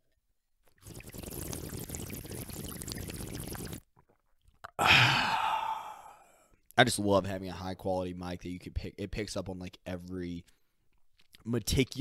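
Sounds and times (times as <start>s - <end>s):
noisy slurping sip of water: 0.7s - 6.4s
satisfied breathy exhale: 4.8s - 6.4s
speech: 6.8s - 10.6s, 11.4s - 12.0s.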